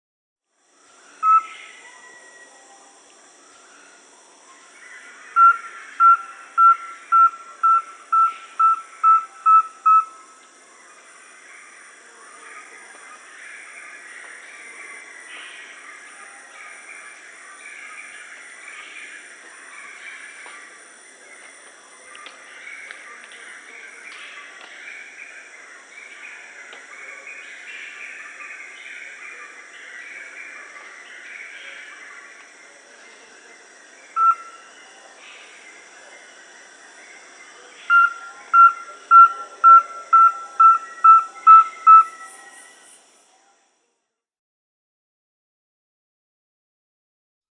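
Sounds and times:
Rusty-belted Tapaculo Liosceles thoracicus calling in Peru: 0:01.2 - 0:01.8, 0:04.8 - 0:10.2, 0:34.2 - 0:34.6, 0:37.8 - 0:42.5.

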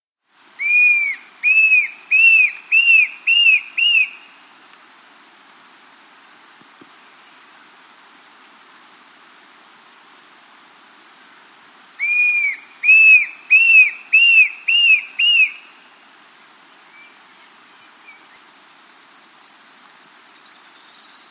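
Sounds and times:
Tufted Antshrike calling in South America: 0:00.6 - 0:04.1, 0:12.0 - 0:15.6.

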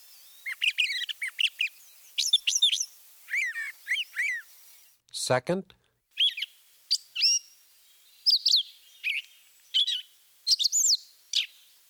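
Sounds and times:
Northern mockingbird singing with mimicry of other species: 0:00.2 - 0:04.5, 0:06.2 - 0:07.5, 0:08.2 - 0:11.6
speech: 0:05.3 - 0:05.8.

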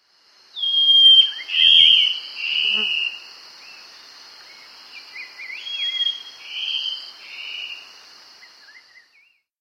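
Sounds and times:
Black-spotted bare-eye singing: 0:00.6 - 0:03.2, 0:05.0 - 0:07.8.

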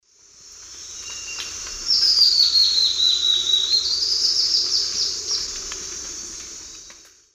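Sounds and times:
Sclerurus rufigularis song in Eastern Lowlands of South America: 0:00.7 - 0:05.5.

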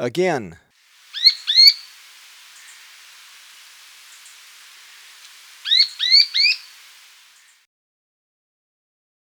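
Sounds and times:
rufous spinetail calling in Ecuador: 0:00.9 - 0:07.6.

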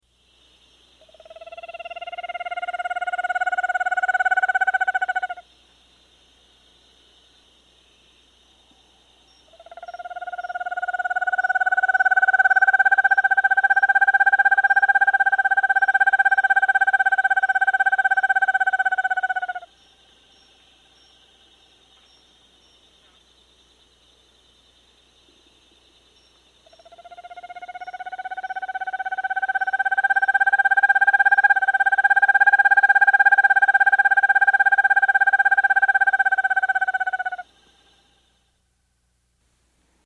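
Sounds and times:
Vermiculated Screech-Owl calling in South America: 0:01.0 - 0:05.4, 0:09.5 - 0:19.7, 0:26.7 - 0:37.9.

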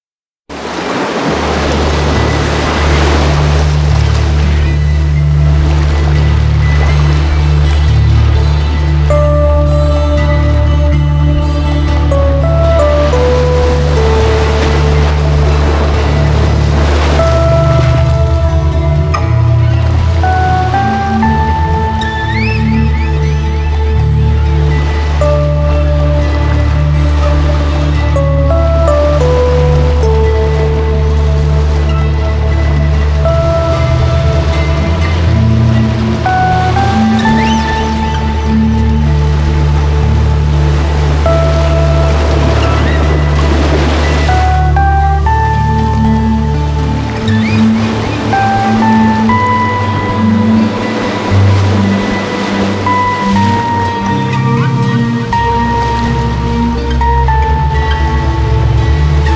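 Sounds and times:
whales calling: 0:00.5 - 0:59.3.

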